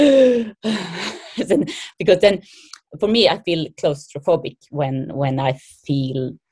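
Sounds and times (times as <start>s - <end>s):
person gasping for breath while climbing: 0.0s - 1.9s
speech: 1.4s - 6.4s.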